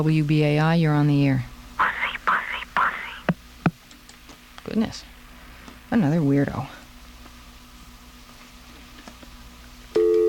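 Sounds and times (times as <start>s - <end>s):
speech: 0.0s - 1.5s, 4.7s - 5.1s, 5.9s - 6.8s
faint hum: 0.0s - 10.2s
telephone busy signal: 10.0s - 10.2s.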